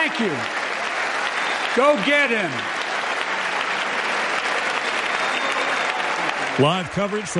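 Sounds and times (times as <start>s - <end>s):
large crowd applauding in the US House chamber: 0.0s - 7.3s
speech: 0.1s - 0.6s, 1.8s - 2.8s, 6.4s - 7.3s.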